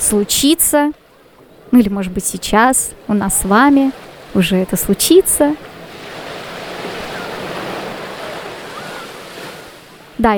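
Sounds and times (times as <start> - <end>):
sea waves washing onto a southern beach: 0.0 - 10.3
speech: 0.1 - 1.0, 1.7 - 5.7, 10.2 - 10.3
wind rumble: 1.0 - 10.2.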